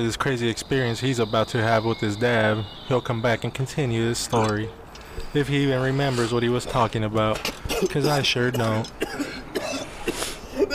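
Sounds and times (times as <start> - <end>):
speech: 0.0 - 9.2
short raspy coughs: 7.4 - 10.7.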